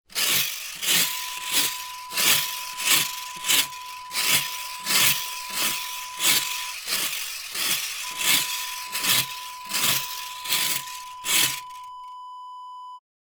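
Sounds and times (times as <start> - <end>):
leaf rake raking: 0.0 - 11.9.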